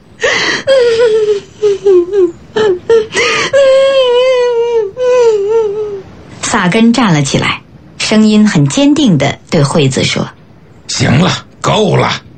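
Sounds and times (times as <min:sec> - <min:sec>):
person crying and sobbing: 0:00.2 - 0:06.0
speech: 0:06.6 - 0:10.4, 0:11.0 - 0:12.3.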